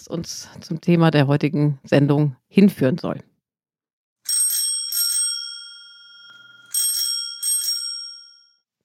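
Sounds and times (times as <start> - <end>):
speech: 0.0 - 3.3
bright-toned bicycle bell ringing: 4.3 - 8.7.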